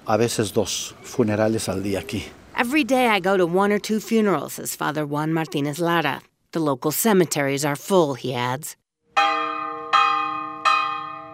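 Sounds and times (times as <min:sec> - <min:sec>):
speech: 0:00.1 - 0:08.8
church bell ringing for Sunday Mass: 0:09.1 - 0:11.3.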